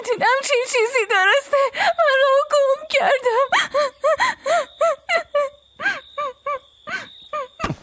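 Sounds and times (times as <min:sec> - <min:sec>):
speech: 0:00.1 - 0:02.4, 0:03.0 - 0:03.9
person sobbing with broken wavering cries: 0:03.5 - 0:07.6.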